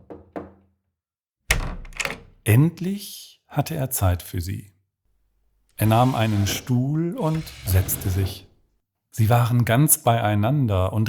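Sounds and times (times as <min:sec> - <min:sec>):
soft knocks on a door: 0:00.0 - 0:00.6
speech: 0:02.4 - 0:04.7, 0:05.8 - 0:08.5, 0:09.2 - 0:11.0.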